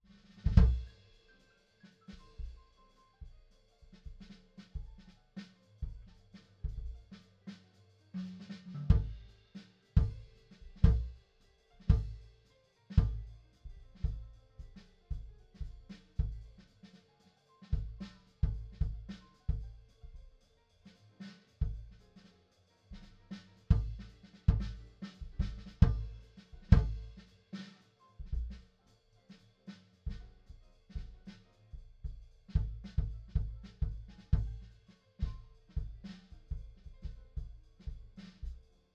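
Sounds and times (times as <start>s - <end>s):
kick drum: 0.5s - 0.9s, 4.1s - 5.1s, 8.8s - 9.2s, 10.0s - 11.2s, 11.9s - 12.3s, 13.0s - 16.6s, 17.8s - 20.4s, 21.6s - 22.0s, 22.9s - 27.2s, 28.2s - 28.6s, 30.1s - 38.6s.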